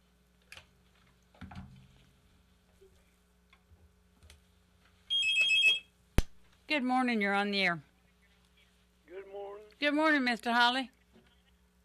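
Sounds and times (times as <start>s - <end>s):
telephone ringing with bright trilling electronic ring: 5.1s - 5.9s
speech: 6.7s - 7.9s, 9.8s - 11.0s.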